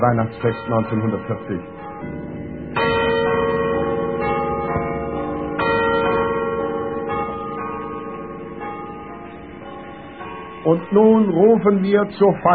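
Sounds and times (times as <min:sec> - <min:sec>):
speech: 0:00.0 - 0:02.9, 0:10.7 - 0:12.5
church bells ringing from the tower of an old garrison church at Christmas: 0:00.0 - 0:12.5.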